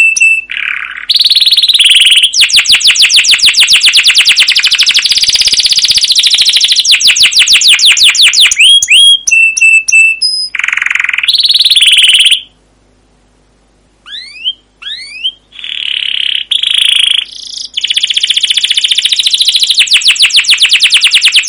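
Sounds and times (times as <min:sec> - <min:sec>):
canary singing long rolling trills: 0:00.0 - 0:12.6, 0:14.0 - 0:21.4.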